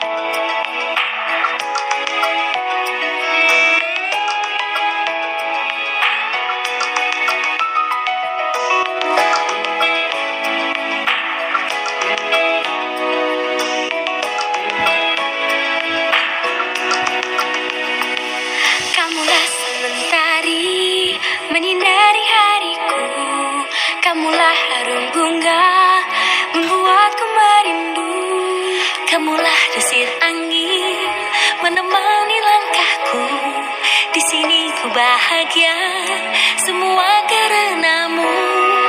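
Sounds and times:
song with singing and layered melody and harmonies: 0.0s - 38.8s.

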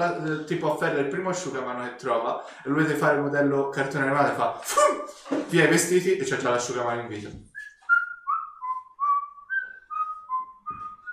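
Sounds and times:
speech: 0.0s - 7.5s
person whistling a lilting tune walking along corridors: 7.6s - 11.1s.

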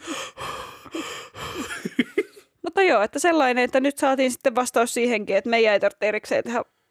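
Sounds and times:
person imitating heavy raspy breathing: 0.0s - 2.5s
speech: 2.9s - 6.8s.

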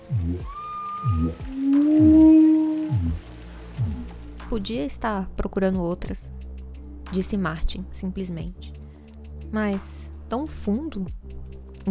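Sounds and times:
repeating low pulsing rhythm: 0.0s - 11.8s
whale song moans deep in the ocean: 0.1s - 4.1s
speech: 4.5s - 6.4s, 7.1s - 8.8s, 9.5s - 11.2s.

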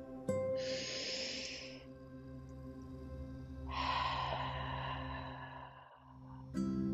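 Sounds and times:
slow deep breath in and out during a guided relaxation exercise: 0.6s - 2.1s, 3.6s - 6.6s.

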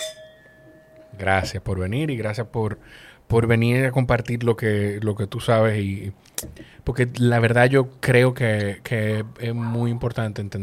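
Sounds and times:
glasses clinking in a toast: 0.0s - 1.6s
speech: 1.2s - 10.6s.

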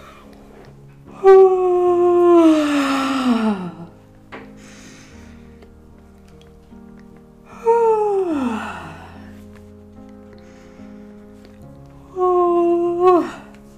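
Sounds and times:
drawn-out yawns ending in a voiced ah: 1.1s - 3.9s, 7.5s - 9.3s, 12.1s - 13.6s.

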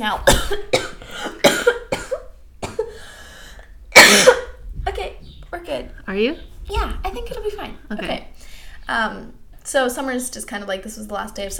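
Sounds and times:
speech: 0.0s - 1.4s, 5.6s - 11.5s
person coughing harshly: 0.2s - 3.1s, 3.9s - 4.6s.

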